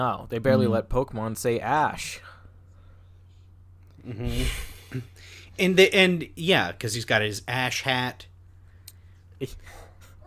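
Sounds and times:
speech: 0.0s - 2.3s, 4.0s - 8.3s, 9.4s - 9.8s
low steady hum: 0.0s - 10.2s
dog giving a short sharp bark: 9.7s - 10.2s.

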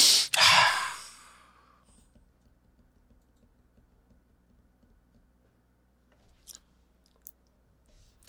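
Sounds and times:
loud deep breath drawn close to the microphone: 0.0s - 1.8s.

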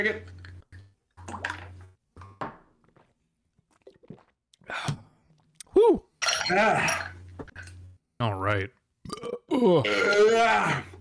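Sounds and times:
speech: 0.0s - 0.4s, 5.8s - 7.0s, 8.2s - 8.8s, 9.6s - 10.9s
long drawn-out ceremonial burp: 6.4s - 7.2s, 9.0s - 10.9s.

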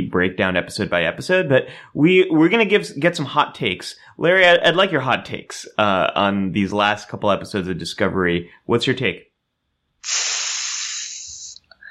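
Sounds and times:
speech: 0.1s - 9.3s, 10.0s - 10.3s
sizzling hiss sound effect: 10.0s - 11.6s.

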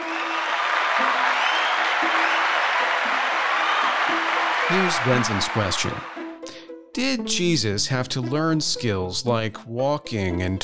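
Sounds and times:
audience round of applause: 0.0s - 6.4s
speech: 4.7s - 6.2s, 7.0s - 10.6s.

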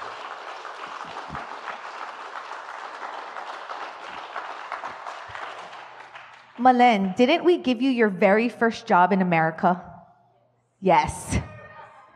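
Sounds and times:
large audience applause welcoming speaker to stage: 0.0s - 6.6s
speech: 6.6s - 9.9s, 10.8s - 11.4s.

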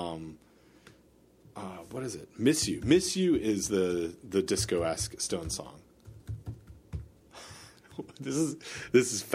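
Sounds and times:
faint hiss: 0.0s - 9.3s
speech: 1.6s - 5.8s, 8.0s - 9.3s
soft typing on a computer keyboard: 5.0s - 7.1s.

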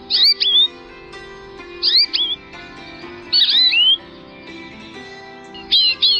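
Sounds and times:
American goldfinch singing: 0.0s - 0.8s, 1.7s - 2.5s, 3.2s - 4.1s, 5.4s - 6.1s
soft sustained musical backdrop: 0.0s - 6.1s.

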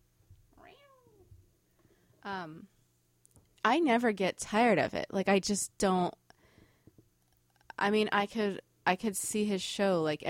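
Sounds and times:
male pet cat meowing: 0.6s - 1.2s
speech: 2.3s - 2.8s, 3.6s - 6.2s, 7.8s - 10.2s.

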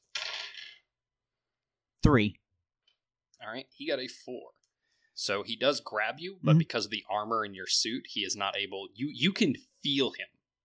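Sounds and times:
dice rolling on a hard table surface: 0.0s - 0.9s
speech: 2.0s - 2.4s, 3.4s - 4.6s, 5.2s - 10.3s.

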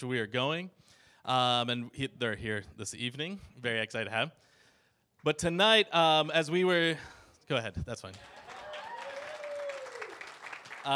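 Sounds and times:
speech: 0.0s - 4.5s, 5.2s - 8.4s
people clapping at a church service: 8.1s - 10.9s.

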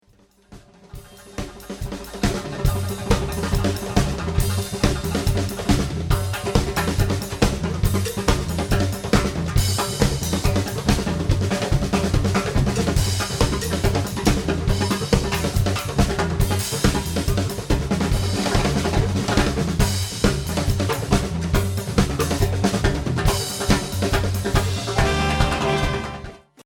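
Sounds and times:
percussion break: 0.2s - 26.6s.

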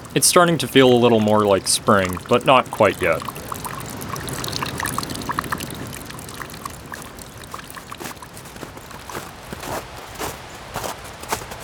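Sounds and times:
continuous wash of flowing water: 0.0s - 11.6s
speech: 0.2s - 3.4s
boots crunching over packed snow at a walking pace: 8.0s - 11.6s.

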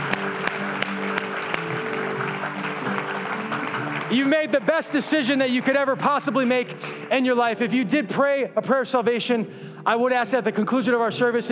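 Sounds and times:
congregation applauding: 0.0s - 8.2s
speech: 4.1s - 11.5s.

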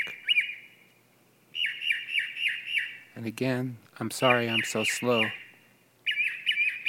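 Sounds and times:
mockingbird calling: 0.0s - 0.9s, 1.5s - 3.2s, 4.2s - 6.8s
speech: 3.2s - 5.4s.

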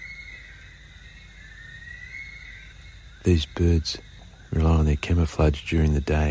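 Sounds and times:
bush stone-curlew wailing at night: 0.0s - 4.9s
speech: 3.2s - 6.2s.

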